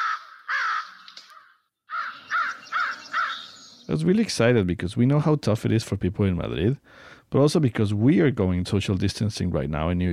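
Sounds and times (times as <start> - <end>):
American crow cawing: 0.0 - 3.9
speech: 3.9 - 10.1.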